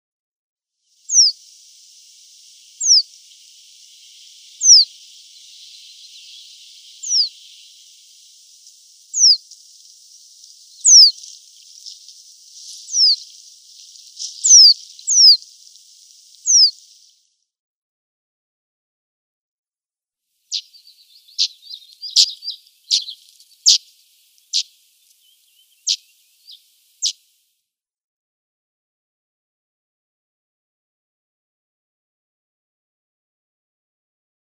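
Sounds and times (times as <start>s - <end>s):
reed bunting calling: 1.0s - 17.1s, 20.5s - 27.3s.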